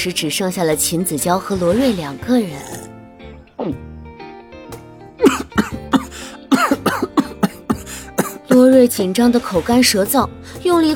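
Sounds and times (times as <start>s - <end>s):
speech: 0.0s - 2.9s, 3.6s - 3.9s, 8.6s - 10.9s
person coughing hard after choking on watermelon juice, hand over mouth: 5.2s - 8.7s.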